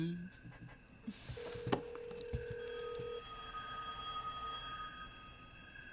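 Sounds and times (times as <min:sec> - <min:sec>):
noise: 0:00.0 - 0:05.9
telephone ringing with one steady electronic tone: 0:01.4 - 0:04.9.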